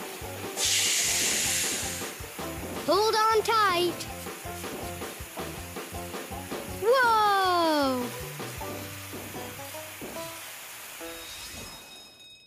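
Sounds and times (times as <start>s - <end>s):
fire hose water spraying onto fire: 0.0s - 12.0s
speech: 2.9s - 5.0s
people exclaiming excitedly: 6.8s - 8.1s.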